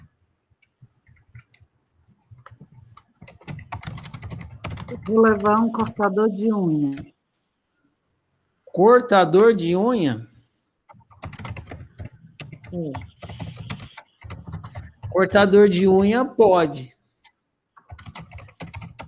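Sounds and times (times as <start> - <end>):
typing on a computer keyboard: 0.6 - 6.0, 10.9 - 16.0, 17.2 - 19.0
speech: 4.9 - 7.1, 8.8 - 10.3, 12.7 - 13.3, 15.2 - 16.9.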